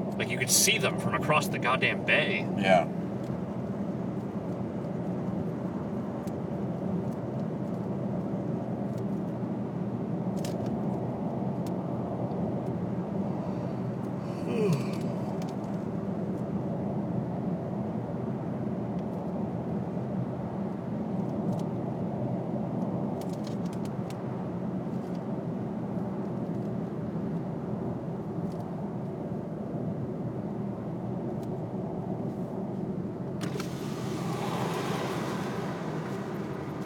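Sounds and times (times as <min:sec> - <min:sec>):
road and engine rumble inside a moving car crossing the Bay Bridge: 0:00.0 - 0:36.8
speech: 0:00.2 - 0:03.0.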